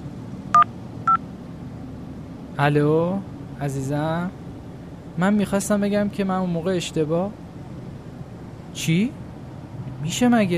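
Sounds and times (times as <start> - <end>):
low hum: 0.0 - 10.5
touch-tone beeps of a phone number being dialed: 0.5 - 1.2
speech: 2.6 - 4.4, 5.2 - 7.4, 8.8 - 9.2, 10.0 - 10.5.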